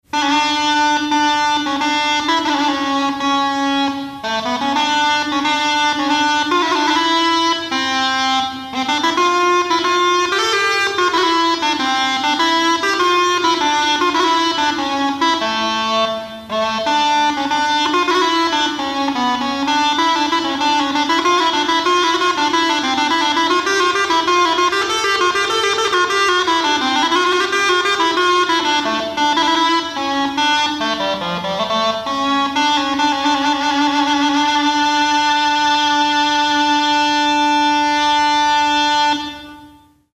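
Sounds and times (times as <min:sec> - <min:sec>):
crumhorn: 0:00.1 - 0:40.1.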